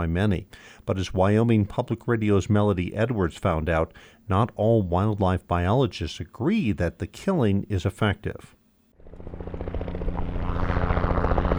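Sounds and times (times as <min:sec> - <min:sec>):
speech: 0:00.0 - 0:08.6
helicopter rotor blades thumping in a canyon: 0:09.1 - 0:11.5.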